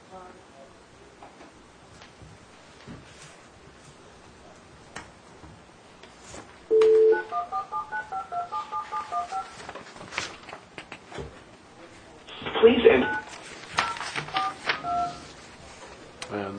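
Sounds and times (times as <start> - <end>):
phone keypad beeping tones dialing a number: 6.7 - 9.5, 13.0 - 15.2
speech: 12.6 - 13.2.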